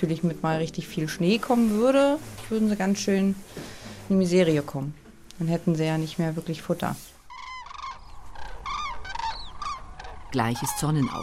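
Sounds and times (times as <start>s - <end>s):
speech: 0.0s - 7.1s, 10.3s - 11.2s
cranes giving trumpeting calls at sunrise while taking off and flying overhead: 7.2s - 11.2s.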